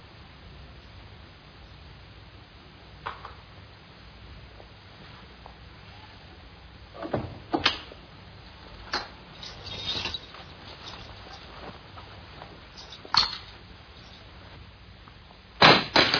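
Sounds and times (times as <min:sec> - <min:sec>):
faint hum: 0:00.0 - 0:16.1
door opening or closing: 0:07.0 - 0:07.8.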